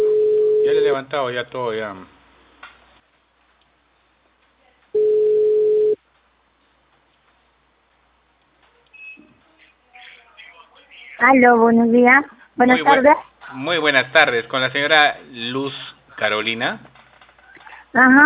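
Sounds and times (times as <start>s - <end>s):
speech: 0.9s - 2.2s, 11.2s - 16.9s, 17.9s - 18.2s
telephone ringing with a single steady electronic tone: 5.0s - 6.0s.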